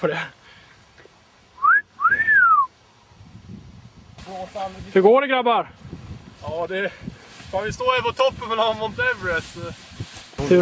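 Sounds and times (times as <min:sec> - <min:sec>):
speech: 0:00.0 - 0:00.4, 0:04.3 - 0:05.8, 0:06.4 - 0:10.5
person whistling two notes: 0:01.6 - 0:02.7.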